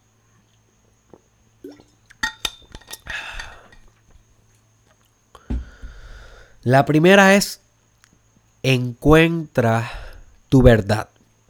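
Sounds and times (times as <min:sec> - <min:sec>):
steady stream of water poured into a glass: 0:01.6 - 0:03.8
glass and bottle clinking and handling: 0:01.7 - 0:03.9
soft knock: 0:05.5 - 0:06.0
speech: 0:06.6 - 0:07.6, 0:08.6 - 0:11.2.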